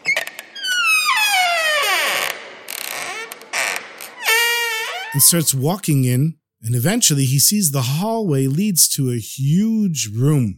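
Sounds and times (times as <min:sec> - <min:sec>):
front door of a palace creaking open: 0:00.0 - 0:05.4
speech: 0:05.2 - 0:10.5.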